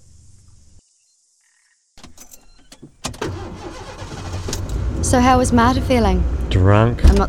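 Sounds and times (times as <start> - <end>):
faint outdoor ambience: 0.0 - 7.2
car engine cranking and starting: 2.0 - 7.2
speech: 5.0 - 7.2.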